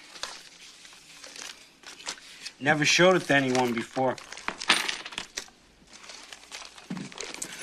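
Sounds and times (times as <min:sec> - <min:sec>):
speech: 0:02.6 - 0:04.3
nickels quarters and a penny clinking as they are handled: 0:04.7 - 0:05.4.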